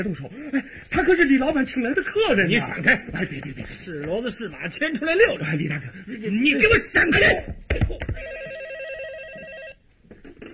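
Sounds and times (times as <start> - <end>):
speech: 0.0 - 8.3
telephone ringing with a warbling electronic ring: 8.2 - 9.9.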